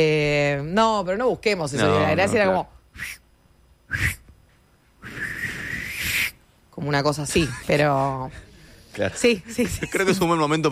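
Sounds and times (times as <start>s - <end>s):
speech: 0.0s - 3.2s, 3.9s - 4.2s, 6.8s - 10.6s
person whistling with breath noise: 3.0s - 3.2s, 3.9s - 4.2s, 5.0s - 6.4s.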